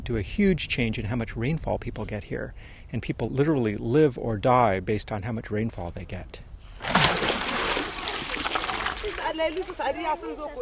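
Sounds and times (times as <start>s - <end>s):
speech: 0.1s - 7.0s, 9.3s - 10.6s
water splashing at a village well in Aduna: 6.7s - 9.9s.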